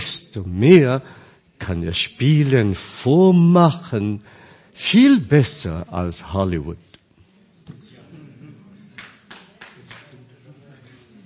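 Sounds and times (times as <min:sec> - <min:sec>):
speech: 0:00.0 - 0:06.9
single person clapping hands: 0:08.9 - 0:10.1.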